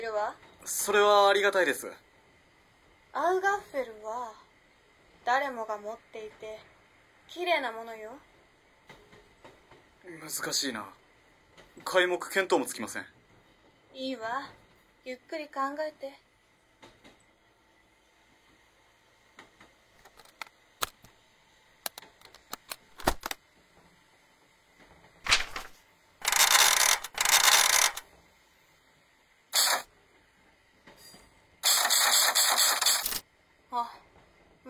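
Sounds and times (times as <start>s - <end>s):
speech: 0.0s - 2.1s, 3.1s - 4.4s, 5.2s - 6.7s, 7.3s - 8.3s, 10.0s - 11.0s, 11.8s - 13.1s, 14.0s - 16.2s
folding typewriter key taps and clunks: 21.9s - 23.4s, 25.3s - 28.0s
folding typewriter type bars jamming with rasping grinding: 22.2s - 23.4s, 25.3s - 28.0s, 29.6s - 29.9s, 31.6s - 33.2s.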